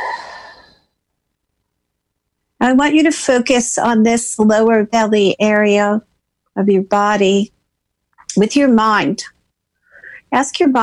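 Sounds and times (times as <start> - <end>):
slow exhale during a breathing exercise: 0.0 - 0.9
speech: 2.7 - 7.6, 8.3 - 9.4, 10.3 - 10.8.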